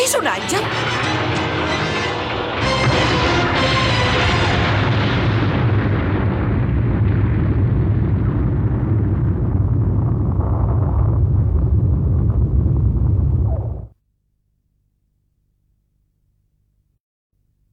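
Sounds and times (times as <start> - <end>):
speech: 0.1 - 1.0
massive explosion with long rumbling crackling aftermath: 2.2 - 13.9.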